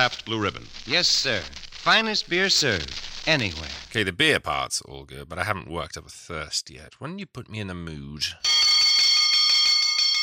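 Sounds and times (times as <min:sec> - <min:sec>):
speech: 0:00.0 - 0:08.6
rapid high-pitched metallic bell ringing: 0:08.4 - 0:10.2.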